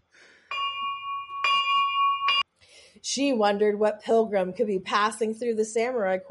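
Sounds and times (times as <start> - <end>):
bright handbell ringing: 0.5 - 2.4
speech: 3.0 - 6.2.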